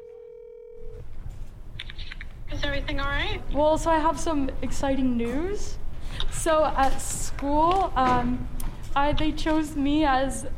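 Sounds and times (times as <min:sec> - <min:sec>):
phone call ringback tone: 0:00.0 - 0:01.0
low rumbling noise: 0:00.8 - 0:10.5
speech: 0:02.5 - 0:05.8, 0:06.4 - 0:10.5.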